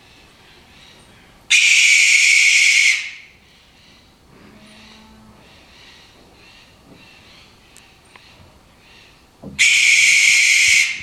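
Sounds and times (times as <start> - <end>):
barn owl screeching in South America: 1.5 - 3.3, 9.6 - 11.0.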